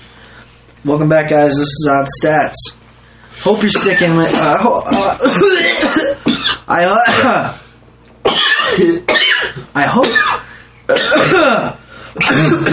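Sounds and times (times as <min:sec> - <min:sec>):
speech: 0:00.9 - 0:07.6, 0:08.2 - 0:12.7
coughing fit: 0:03.7 - 0:07.5, 0:08.3 - 0:12.7
rough throat clearing: 0:03.7 - 0:07.5, 0:08.3 - 0:12.7.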